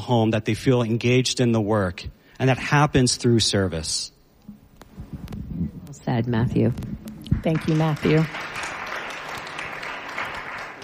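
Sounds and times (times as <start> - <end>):
speech: 0.0 - 4.2, 6.1 - 8.4
audience applause: 7.3 - 10.8.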